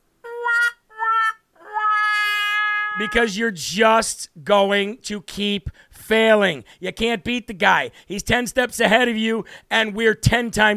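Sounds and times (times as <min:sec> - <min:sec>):
cat meowing: 0:00.3 - 0:03.2
speech: 0:03.0 - 0:10.7.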